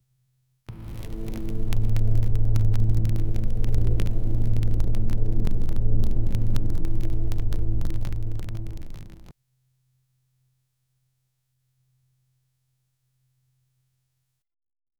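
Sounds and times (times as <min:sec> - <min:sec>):
soft ambient hum: 0:00.7 - 0:09.3.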